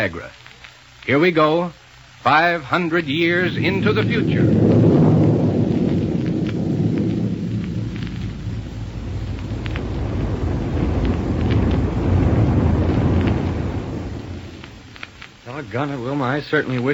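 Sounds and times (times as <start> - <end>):
speech: 0.0 - 0.4, 1.0 - 4.8, 15.8 - 16.9
rocket plane roaring through the air: 3.0 - 15.4.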